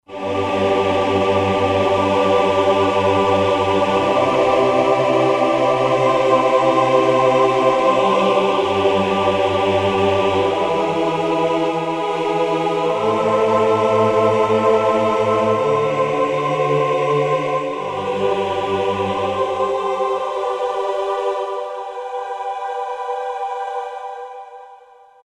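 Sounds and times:
choir on Roland SR-JV80-09: 0.0 - 25.2.

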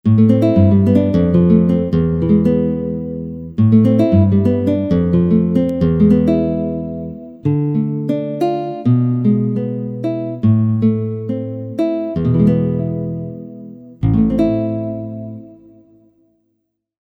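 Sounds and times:
nylon guitar: 0.0 - 16.4.

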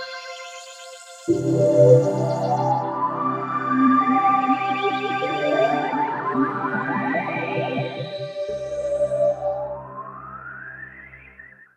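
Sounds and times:
rainforest sounds on a digital synthesizer: 1.3 - 10.2.

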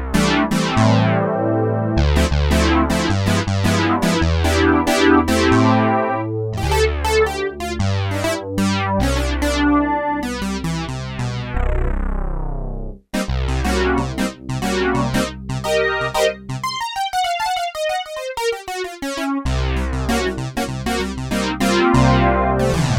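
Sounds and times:
resonant synth from sampler: 0.2 - 22.9.

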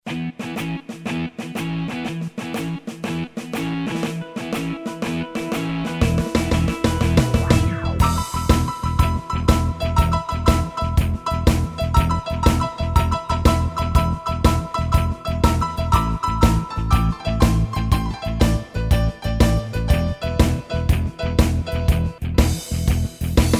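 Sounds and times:
rock shuffle music: 0.0 - 23.5.

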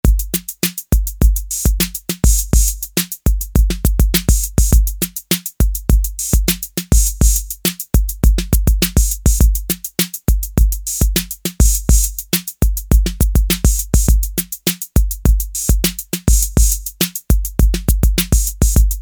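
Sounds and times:
Roland TR-808 drum machine rock beat: 0.0 - 19.0.

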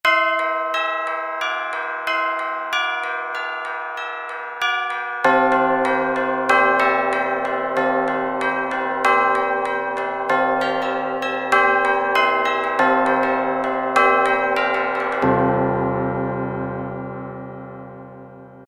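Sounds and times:
Roland SR-JV80-02 Orchestral tubular bells: 0.0 - 18.6.

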